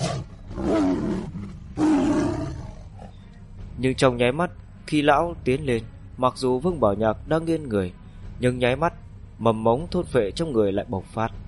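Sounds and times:
tiger roaring: 0.0 - 3.3
speech: 3.8 - 11.4.

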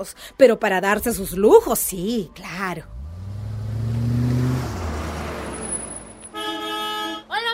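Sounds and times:
speech: 0.0 - 3.0
fashionable car arriving with engine droning: 2.8 - 7.4.

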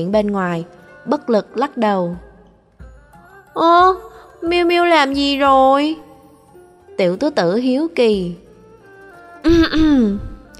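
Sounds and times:
speech: 0.0 - 2.3, 3.6 - 6.1, 7.0 - 8.4, 9.4 - 10.3
harsh voiced cough with rasping throat clearing: 9.4 - 10.4.

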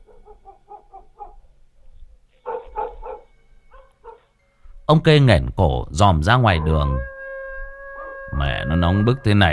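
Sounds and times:
neighbour's dog barking: 0.0 - 1.5, 2.4 - 4.3
speech: 4.9 - 7.1, 8.4 - 9.5.

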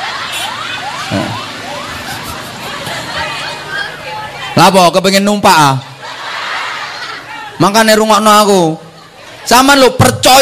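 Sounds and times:
laughter: 0.0 - 4.1, 5.9 - 7.6
ambulance siren passing by: 0.0 - 4.8
low rumble of traffic: 0.0 - 10.4
speech: 4.6 - 5.9, 7.6 - 8.8, 9.5 - 10.4.

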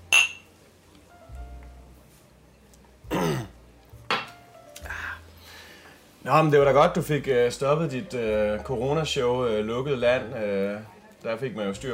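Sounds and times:
glasses clinking in a toast: 0.1 - 0.5, 4.1 - 4.4
breathy throat and vocal noises: 4.8 - 6.0
speech: 6.3 - 11.9.

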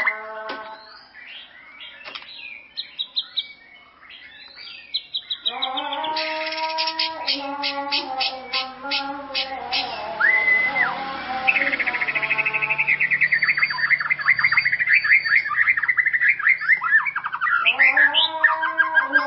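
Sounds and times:
white-rumped shama singing: 5.6 - 19.2.

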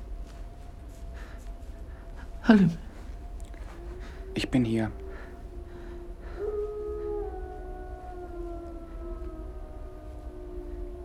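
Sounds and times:
speech: 2.5 - 2.8, 4.4 - 5.0
mongrel dogs howling: 3.0 - 11.0.

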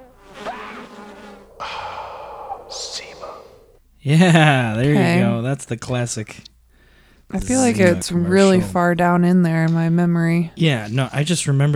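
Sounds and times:
bees buzzing in a beehive: 0.0 - 3.8, 4.8 - 5.5, 7.3 - 9.2
speech: 4.0 - 6.5, 7.3 - 11.7
laughter: 4.2 - 5.4, 7.4 - 9.0.

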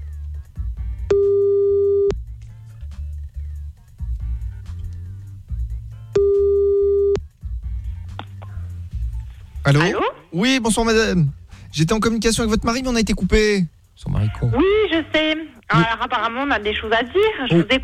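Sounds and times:
low humming background: 0.0 - 17.8
telephone busy tone while calling back: 1.1 - 2.1, 6.2 - 7.2
speech: 9.7 - 17.8.

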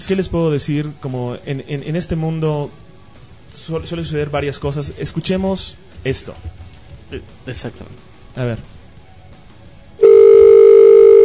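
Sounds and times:
speech: 0.1 - 2.8, 3.6 - 8.7
telephone dial tone: 10.0 - 11.2.

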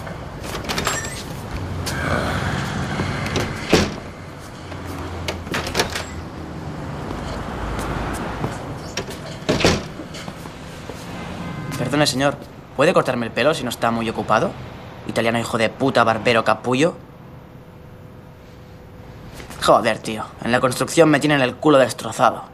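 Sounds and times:
steady hum: 0.0 - 22.5
barbershop door latch and frame clicking and knocking: 3.2 - 4.1, 5.2 - 6.2, 9.0 - 10.0
speech: 12.0 - 17.1, 19.7 - 22.5.

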